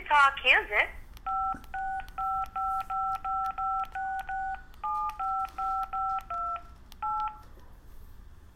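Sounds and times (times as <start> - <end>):
speech: 0.2 - 1.0
telephone keypad dialing tones: 1.3 - 7.5.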